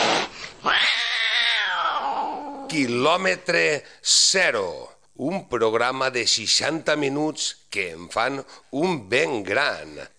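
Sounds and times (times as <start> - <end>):
cat yowling: 0.6 - 2.8
speech: 2.7 - 10.1.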